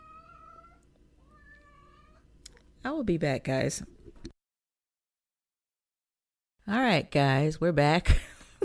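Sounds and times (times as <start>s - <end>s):
cat meowing insistently: 0.0s - 2.3s
speech: 2.8s - 4.0s, 6.7s - 8.6s.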